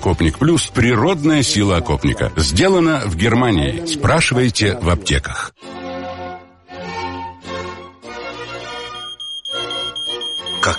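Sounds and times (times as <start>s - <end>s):
speech: 0.0s - 5.7s
electronic smoke alarm beeping: 8.8s - 10.7s.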